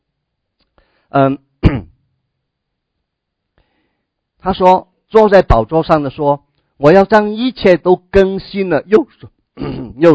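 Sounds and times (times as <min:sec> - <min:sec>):
speech: 0:01.1 - 0:01.9, 0:04.4 - 0:10.1
person with a dry throat clearing throat: 0:01.6 - 0:02.0, 0:09.6 - 0:10.1
person with a dry throat coughing: 0:01.6 - 0:02.0, 0:09.6 - 0:10.1.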